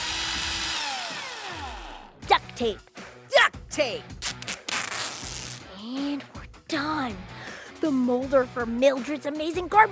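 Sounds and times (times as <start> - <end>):
power drill whining: 0.0 - 2.2
speech: 2.6 - 2.9, 3.7 - 4.3, 5.9 - 9.9.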